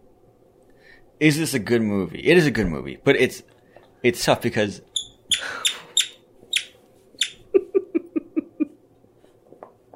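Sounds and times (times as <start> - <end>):
speech: 1.1 - 5.5
dog squeezing a squeaky toy: 5.0 - 7.4
laughter: 7.5 - 8.8.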